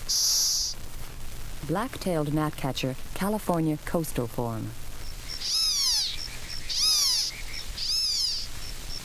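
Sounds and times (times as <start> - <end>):
loud swooping harmonic frog calls: 0.1 - 0.8, 5.0 - 9.0
speech: 1.6 - 4.8.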